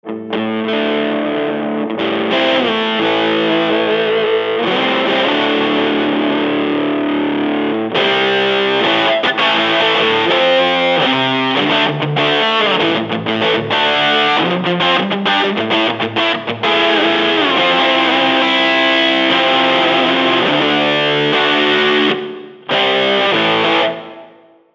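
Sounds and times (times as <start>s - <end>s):
overdriven Deluxe guitar amp: 0.0s - 24.7s.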